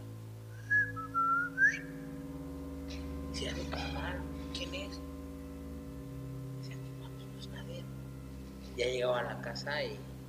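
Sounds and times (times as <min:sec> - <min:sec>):
low steady hum: 0:00.0 - 0:10.2
person whistling a short tune imitating an eerie whistle: 0:00.6 - 0:01.9
speech: 0:03.7 - 0:05.1, 0:08.8 - 0:10.1.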